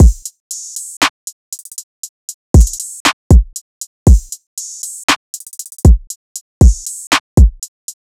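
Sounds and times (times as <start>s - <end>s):
Hip Hop drum loop at 118 BPM: 0.0s - 1.9s, 2.6s - 8.1s.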